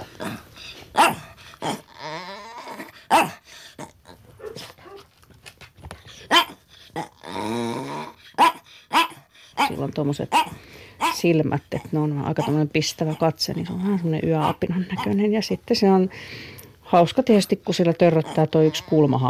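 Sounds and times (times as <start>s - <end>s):
small terrier mix quacking, warbling growls and whining: 0.0s - 5.1s, 6.1s - 15.2s, 18.0s - 19.2s
small terrier mix barking: 0.9s - 1.8s, 2.8s - 3.4s, 4.4s - 5.1s, 6.3s - 6.6s, 8.4s - 11.2s
speech: 10.0s - 19.2s.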